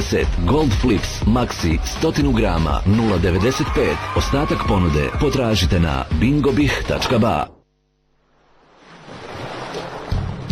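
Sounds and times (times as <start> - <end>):
speech: 0.0 - 7.6
ocean waves washing onto the Albanian coast: 8.3 - 10.4.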